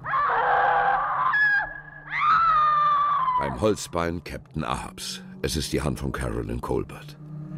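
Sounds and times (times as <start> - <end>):
loud shrill scream: 0.0 - 3.6
speech: 3.5 - 7.2.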